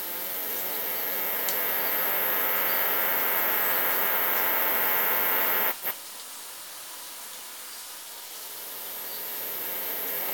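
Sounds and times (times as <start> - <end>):
cicada brevipennis song: 0.0 - 5.9, 8.6 - 10.3.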